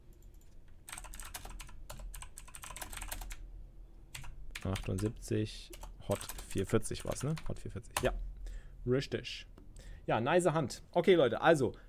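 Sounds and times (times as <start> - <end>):
notes typed on a computer keyboard: 0.1 - 3.4, 4.1 - 8.1
speech: 4.6 - 9.5, 10.1 - 11.8.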